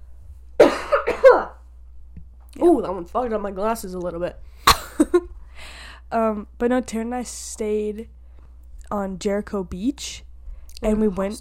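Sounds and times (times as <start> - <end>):
loud harsh throaty cough: 0.6 - 1.6
speech: 2.6 - 5.3, 6.1 - 8.2, 8.9 - 11.3.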